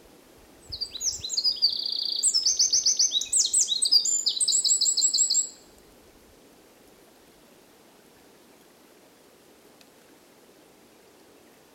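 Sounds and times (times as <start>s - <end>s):
Eurasian wren Troglodytes troglodytes singing: 0.6s - 5.6s.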